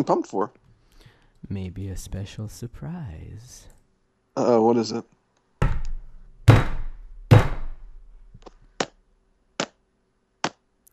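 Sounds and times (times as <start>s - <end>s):
speech: 0.0s - 0.6s, 1.4s - 3.7s, 4.4s - 5.2s
knocking on a door: 5.6s - 7.9s.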